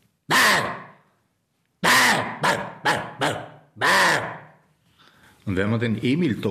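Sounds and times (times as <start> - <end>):
person imitating a roe deer alarm bark: 0.3 - 1.0, 1.8 - 4.6
speech: 5.5 - 6.4.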